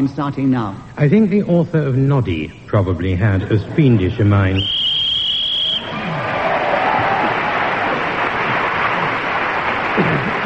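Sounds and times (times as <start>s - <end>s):
speech: 0.0s - 4.8s
brief high whistle-like tone: 4.6s - 6.0s
loud audience cheering and clapping: 4.9s - 10.4s.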